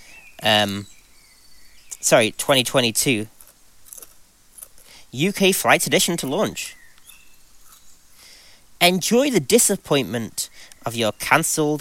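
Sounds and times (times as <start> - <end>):
birds chirping: 0.0 - 3.8, 4.7 - 11.8
speech: 0.4 - 1.0, 2.0 - 3.3, 5.1 - 6.8, 8.8 - 11.8.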